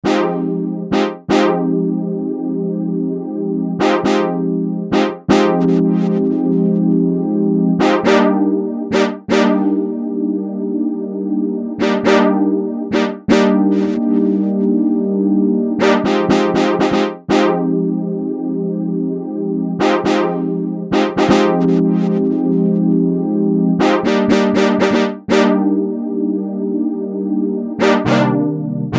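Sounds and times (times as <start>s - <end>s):
analog brass chord: 0.0s - 28.9s.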